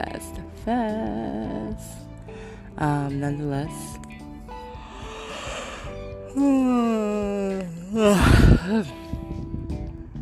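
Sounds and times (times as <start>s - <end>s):
speech: 0.0s - 2.0s, 2.8s - 4.0s, 6.3s - 9.0s
person yawning: 5.0s - 9.0s.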